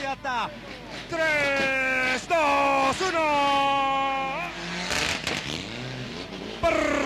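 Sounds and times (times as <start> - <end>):
speech: 0.1 - 3.9
rally car tires and gravel noise accelerating from a standstill: 0.2 - 7.0
rally car engine revving hard with rising harmonic whine: 0.4 - 7.0.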